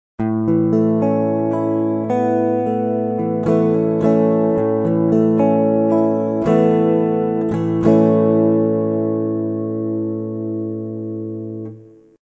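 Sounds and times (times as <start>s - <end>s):
Asus2 chord: 0.2s - 12.2s.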